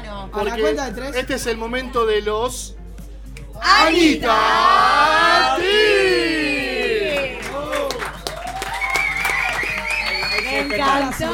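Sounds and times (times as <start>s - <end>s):
speech: 0.3s - 2.8s, 3.6s - 5.1s, 10.6s - 11.3s
live audience cheering and whooping: 5.4s - 10.7s
live audience applause: 6.7s - 11.3s.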